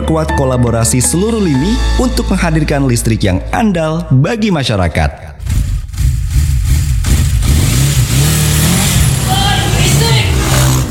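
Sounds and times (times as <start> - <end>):
speech: 0.1 - 5.6
loud vehicle engine revving through its exhaust: 5.4 - 10.8.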